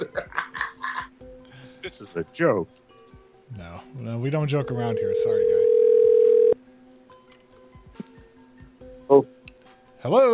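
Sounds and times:
laughter: 0:00.0 - 0:01.1
speech: 0:02.0 - 0:02.8, 0:03.5 - 0:05.7, 0:10.0 - 0:10.3
telephone dial tone: 0:05.0 - 0:06.6.

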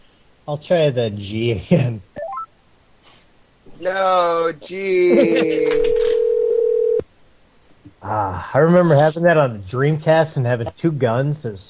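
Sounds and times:
faint noise: 0:00.0 - 0:11.6
speech: 0:00.5 - 0:02.1, 0:03.8 - 0:06.0, 0:08.0 - 0:11.6
laughter: 0:03.9 - 0:05.9
telephone dial tone on a call attempt: 0:05.7 - 0:07.0.

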